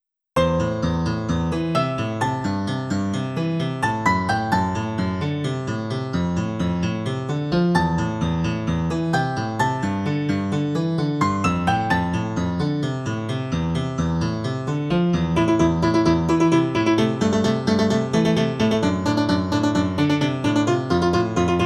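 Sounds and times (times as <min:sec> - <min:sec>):
short piano piece: 0:00.4 - 0:21.6.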